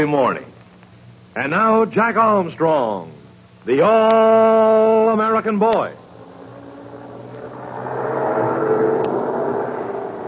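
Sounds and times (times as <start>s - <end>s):
speech: 0.0s - 0.5s, 1.4s - 6.0s
heavy army truck engine rumbling while backing up to a schooner at a dock: 5.1s - 10.2s.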